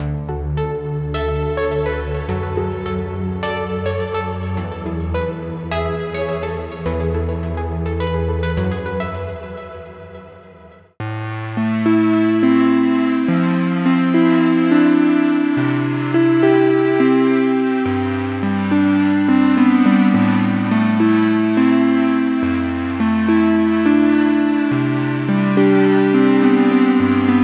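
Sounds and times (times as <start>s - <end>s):
ambient downtempo music: 0.0s - 27.4s.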